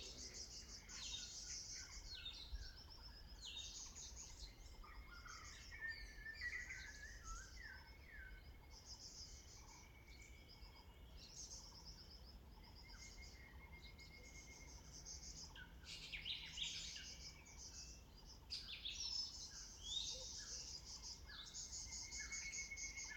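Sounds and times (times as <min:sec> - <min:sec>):
birds chirping and trilling in mountain woods in the morning: 0:00.0 - 0:23.1.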